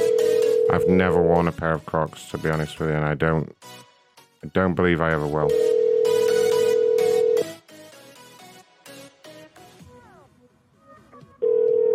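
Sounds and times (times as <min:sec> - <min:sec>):
electronic phone ringtone ringing unanswered: 0:00.0 - 0:01.2, 0:05.5 - 0:07.5, 0:11.4 - 0:11.9
speech: 0:00.7 - 0:03.8, 0:04.4 - 0:06.2.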